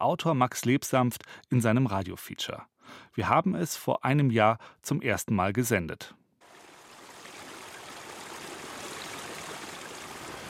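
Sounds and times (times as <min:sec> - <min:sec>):
speech: 0:00.0 - 0:06.2
rushing mountain stream: 0:06.4 - 0:10.4.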